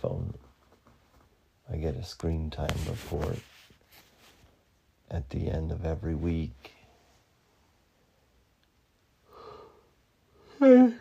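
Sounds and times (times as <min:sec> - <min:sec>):
speech: 0:01.8 - 0:03.5, 0:05.1 - 0:06.8
person yawning: 0:10.4 - 0:11.0.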